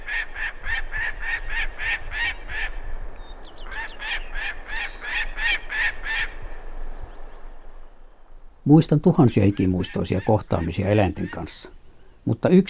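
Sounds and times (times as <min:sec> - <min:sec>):
gyrfalcon harsh cackling calls: 0:00.0 - 0:02.8, 0:03.6 - 0:06.4, 0:09.3 - 0:11.6
speech: 0:08.7 - 0:12.6.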